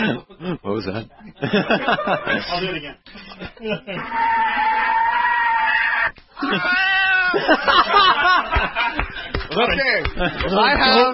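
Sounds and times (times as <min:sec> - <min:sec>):
speech: 0:00.0 - 0:05.0, 0:06.4 - 0:11.1
laughter: 0:01.2 - 0:05.1, 0:06.4 - 0:11.1
kittens meowing: 0:04.0 - 0:07.4.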